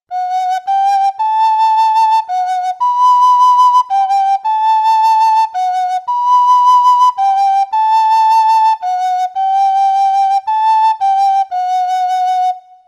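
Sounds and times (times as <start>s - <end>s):
Galician whistle blowing with vibrato during tuning: 0.1s - 12.8s.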